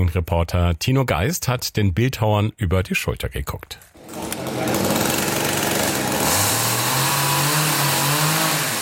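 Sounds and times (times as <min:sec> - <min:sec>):
speech: 0:00.0 - 0:04.8
motor saw cutting into thick oak trunks: 0:04.0 - 0:08.7.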